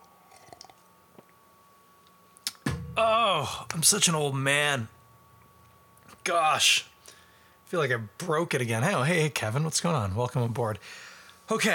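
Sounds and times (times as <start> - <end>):
person sipping beer: 0.2 - 0.8
speech: 3.0 - 5.0, 6.3 - 6.9, 7.7 - 11.7.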